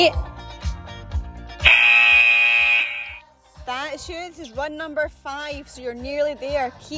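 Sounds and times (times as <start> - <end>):
speech: 0.0 - 0.2, 4.0 - 6.9
workout electronic interval buzzer: 1.6 - 3.2.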